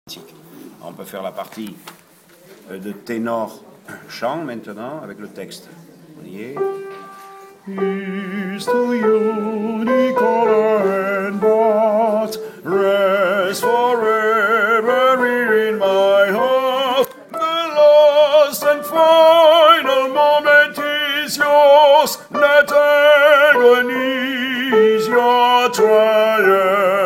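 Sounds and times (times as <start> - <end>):
tenor voice chanting: 7.6 - 27.0.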